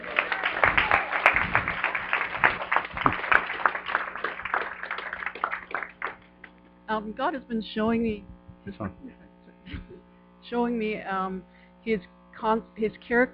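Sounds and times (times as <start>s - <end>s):
audience applauding to give praise and thanks to God: 0.0s - 6.3s
speech: 7.0s - 9.8s, 10.5s - 13.3s.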